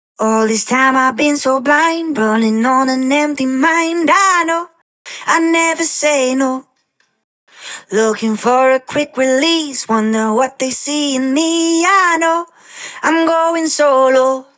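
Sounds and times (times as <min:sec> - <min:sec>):
dry main vocal verse in A minor: 0:00.2 - 0:06.8, 0:07.6 - 0:14.5.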